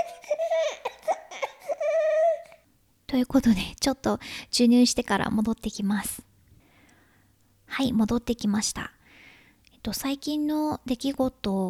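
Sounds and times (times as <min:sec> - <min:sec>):
baby crying after waking from nap: 0:00.0 - 0:02.6
speech: 0:03.1 - 0:06.3, 0:07.8 - 0:09.0, 0:09.8 - 0:11.6.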